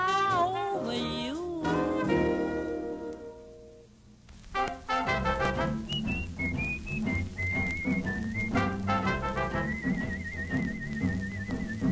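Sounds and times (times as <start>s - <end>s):
full band accompaniment: 0.2s - 3.7s, 4.6s - 11.9s
person whistling a lively tune: 5.6s - 11.9s.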